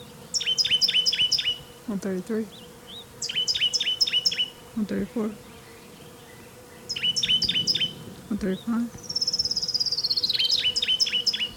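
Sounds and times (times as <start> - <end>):
low steady noise: 0.0 - 11.5
orange-crowned warbler singing: 0.0 - 11.5
speech: 1.9 - 2.6, 4.8 - 5.5, 8.3 - 9.1.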